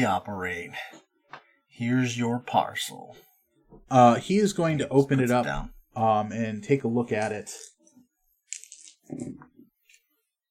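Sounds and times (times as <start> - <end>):
speech: 0.0 - 1.1, 1.8 - 7.7, 9.1 - 9.5
dice rolled during a game clattering across a hard surface: 8.5 - 9.3.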